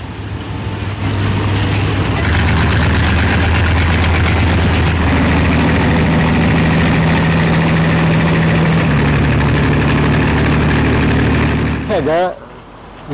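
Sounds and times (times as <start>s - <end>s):
river ferry engine idling: 0.0s - 13.0s
speech: 12.0s - 12.4s.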